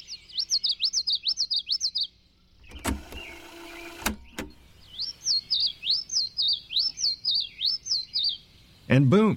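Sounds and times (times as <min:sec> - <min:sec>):
bird singing rapid repeating high chirping phrases: 0:00.0 - 0:09.3
short mechanical whirr: 0:02.6 - 0:04.6.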